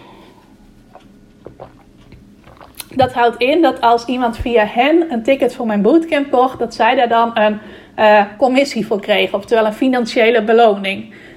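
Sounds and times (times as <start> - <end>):
person taking a quiet sip of water: 0.0 - 3.2
swallowing: 0.8 - 3.4
soft wet mouth clicks: 0.9 - 3.1
speech: 3.0 - 11.3.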